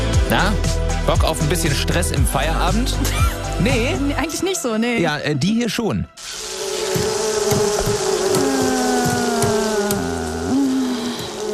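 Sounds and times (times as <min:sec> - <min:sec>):
speech: 0:00.3 - 0:06.4
steady busy hiss: 0:06.2 - 0:11.5
wasp buzzing: 0:06.2 - 0:11.5.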